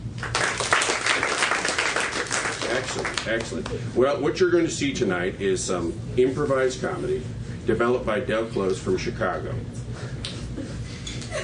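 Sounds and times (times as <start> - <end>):
crowd applauding: 0.2 - 3.8
speech: 2.9 - 10.0.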